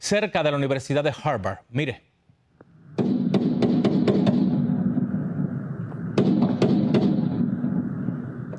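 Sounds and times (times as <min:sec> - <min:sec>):
speech: 0:00.0 - 0:02.1
steady noise bed: 0:00.0 - 0:08.5
assault rifle gunfire aimed at vehicles on a busy road: 0:03.0 - 0:04.9, 0:06.2 - 0:07.8.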